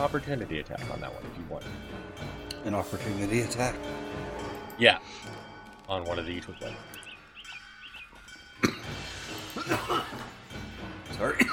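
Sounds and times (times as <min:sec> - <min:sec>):
speech: 0:00.0 - 0:07.0
person coughing: 0:08.6 - 0:10.3, 0:11.2 - 0:11.5.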